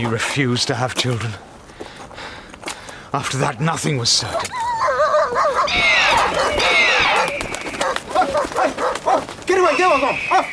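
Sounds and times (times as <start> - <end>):
speech: 0.0 - 1.5, 3.1 - 4.6, 9.5 - 10.5
dog yelping and whimpering: 4.5 - 9.3.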